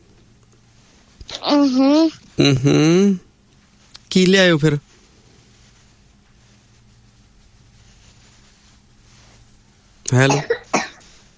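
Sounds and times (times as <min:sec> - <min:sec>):
speech: 0:01.4 - 0:03.2, 0:04.1 - 0:04.9, 0:10.1 - 0:10.6
man coughing: 0:10.1 - 0:11.0.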